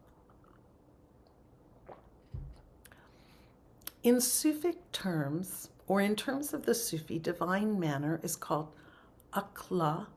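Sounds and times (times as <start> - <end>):
person sipping tea: 0.0 - 3.1
speech: 4.0 - 10.1.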